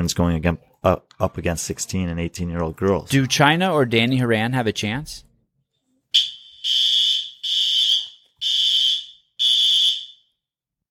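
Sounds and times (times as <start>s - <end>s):
speech: 0.0s - 5.3s, 6.1s - 7.0s
building fire alarm blaring in shrill bursts: 6.1s - 10.4s.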